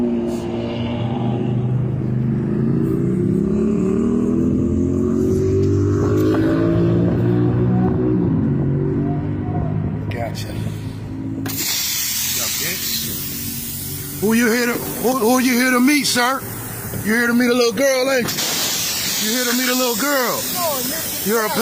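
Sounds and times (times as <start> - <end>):
car engine rumbling as the vehicle pulls up at a gas station: 0.0 - 21.6
brief hiss: 11.5 - 13.8
speech: 15.4 - 18.5, 19.2 - 20.6, 21.2 - 21.6.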